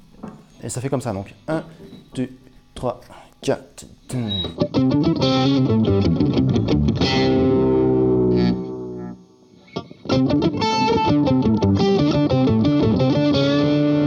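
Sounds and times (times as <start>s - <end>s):
speech: 0.6s - 7.3s
slow electric guitar solo with distorted effects-laden tone, filter removed: 4.2s - 14.0s.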